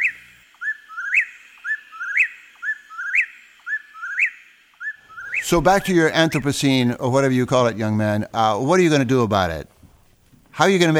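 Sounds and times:
songbird singing a clear whistled phrase with upslurred ending: 0.0 - 6.4
speech: 5.5 - 9.7, 10.6 - 10.9.

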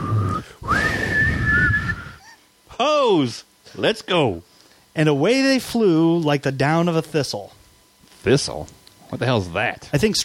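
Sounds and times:
person whistling to a sleigh team: 0.0 - 2.4
speech: 2.8 - 7.6, 8.2 - 10.2.

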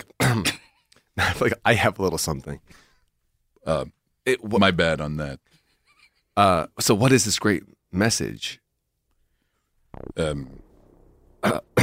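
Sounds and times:
speech: 0.0 - 0.6, 1.2 - 2.9, 3.6 - 5.6, 6.4 - 8.6, 10.0 - 10.6, 11.4 - 11.8
person clearing throat: 0.2 - 0.6, 11.4 - 11.8.

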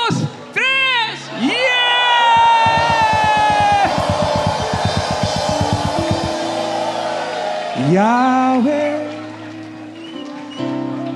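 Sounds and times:
crowd cheering: 1.3 - 11.1
audience shouting a victory cheer: 1.4 - 8.2
low rhythmic thumping: 2.4 - 7.5
speech: 7.9 - 8.8.

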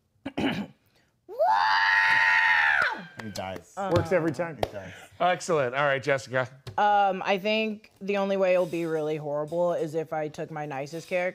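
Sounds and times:
voice imitating an agonized scream: 1.3 - 3.2
speech: 3.8 - 11.3.

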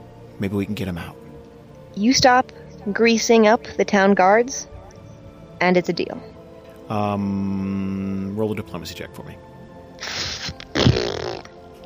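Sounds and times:
speech: 0.4 - 1.2, 2.0 - 4.7, 5.6 - 6.3, 6.9 - 9.5
loud burp: 10.5 - 11.6.

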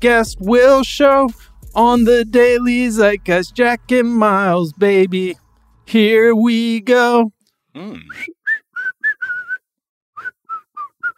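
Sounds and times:
speech: 0.0 - 8.4
short sliding vocal-like sound: 7.8 - 8.2
whistled hook of a rap song: 8.1 - 11.1.

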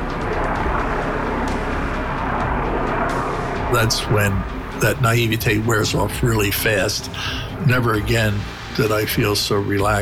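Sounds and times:
military helicopter hovering overhead with rotor and engine roar: 0.0 - 10.0
speech: 3.7 - 10.0.

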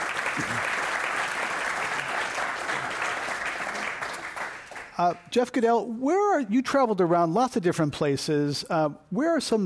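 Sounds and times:
room full of people applauding: 0.0 - 5.0
speech: 0.4 - 0.8, 5.0 - 9.6.

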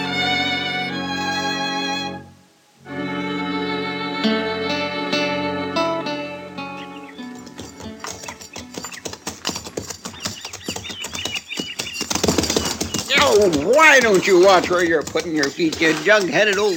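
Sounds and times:
music: 0.0 - 9.6
hooves of a ridden horse walking, clip-clopping: 6.7 - 16.7
speech: 13.4 - 16.7.

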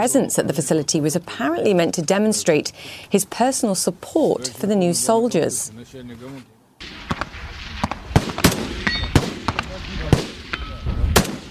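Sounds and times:
speech: 0.0 - 7.0
sniper rifle shots at a gun range: 6.8 - 11.4
steady rumble: 6.8 - 11.4.

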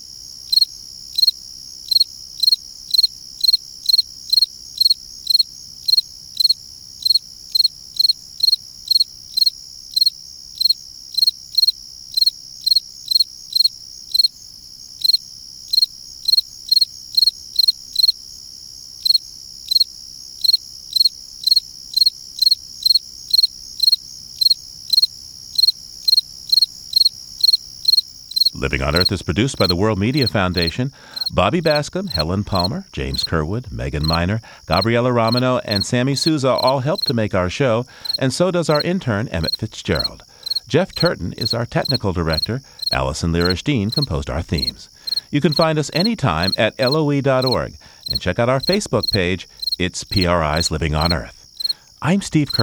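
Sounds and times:
fall field cricket singing: 0.0 - 52.6
faint low hum: 28.5 - 52.6
speech: 28.6 - 51.4, 52.0 - 52.6.

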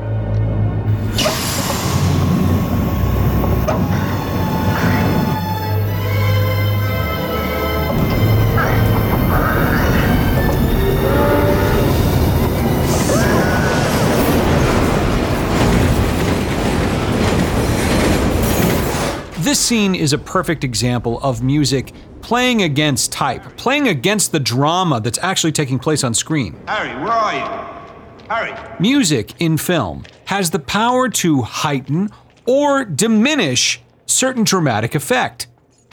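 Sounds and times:
subway train roaring past with rattling cars and clacking wheels: 0.0 - 24.0
screech of metal from subway train: 0.9 - 5.8, 6.8 - 15.1
subway train horn blast: 0.9 - 13.1
speech: 19.5 - 35.5.

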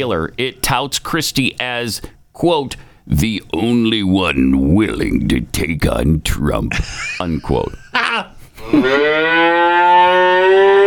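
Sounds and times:
speech: 0.0 - 9.6
laughter: 6.7 - 9.1
cow mooing: 8.8 - 10.8.

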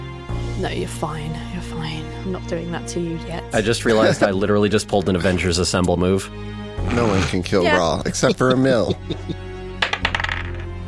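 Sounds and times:
speech: 0.6 - 9.4
laughter: 3.6 - 4.4, 6.9 - 9.5
dice clattering across a hard table: 9.8 - 10.8.

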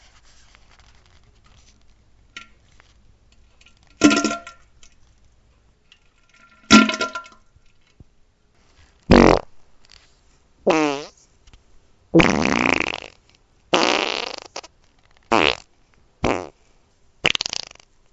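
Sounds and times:
farting: 9.1 - 9.5, 10.7 - 11.2, 12.2 - 16.6, 17.2 - 17.9.

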